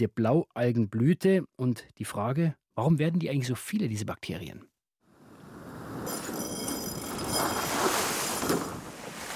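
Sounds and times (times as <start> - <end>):
speech: 0.0 - 4.7
wind and waves rushing on a choppy windy sea: 5.2 - 9.3
water splashing against the hull of a small sailboat: 7.0 - 9.3.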